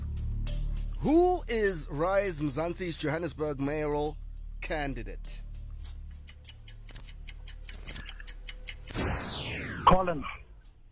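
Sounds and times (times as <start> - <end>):
quiz countdown clock ticking: 0.0 - 10.9
speech: 1.0 - 5.4, 9.8 - 10.4
descending electronic sweep: 8.9 - 10.5.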